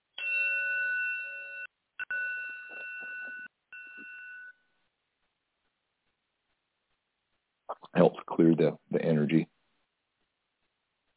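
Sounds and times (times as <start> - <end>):
bell bowl struck with a striking tool: 0.2 - 4.6
speech: 7.9 - 9.5.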